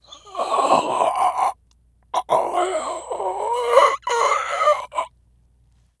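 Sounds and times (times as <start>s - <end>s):
zombie ambience: 0.1s - 1.6s, 2.2s - 5.1s.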